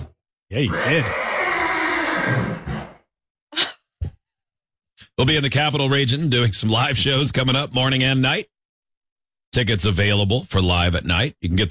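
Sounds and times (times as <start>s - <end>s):
speech: 0.5s - 1.2s, 2.2s - 2.7s, 5.2s - 8.5s, 9.5s - 11.7s
horse whinnying during a horse rescue: 0.7s - 3.0s.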